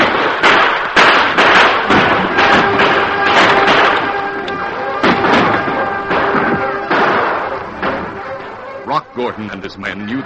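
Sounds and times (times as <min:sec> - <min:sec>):
gunfire in a radio-drama shootout: 0:00.0 - 0:08.8
speech: 0:09.2 - 0:10.2.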